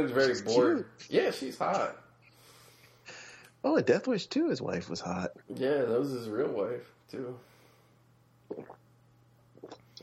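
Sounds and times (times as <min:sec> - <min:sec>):
speech: 0:00.0 - 0:02.0, 0:03.6 - 0:07.5, 0:08.5 - 0:08.8
faint steady hum: 0:00.0 - 0:10.0
wet slurping sips of orange sparkling water: 0:08.5 - 0:08.8.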